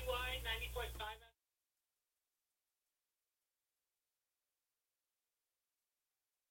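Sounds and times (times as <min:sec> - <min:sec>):
low electrical hum: 0:00.0 - 0:01.2
tinny voice over a telephone line: 0:00.0 - 0:01.3.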